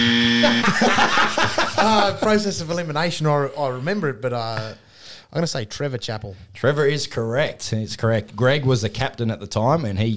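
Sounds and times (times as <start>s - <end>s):
harsh flat quiz-show wrong-answer buzzer: 0.0s - 2.2s
people chuckling: 0.4s - 2.5s
speech: 0.4s - 10.1s.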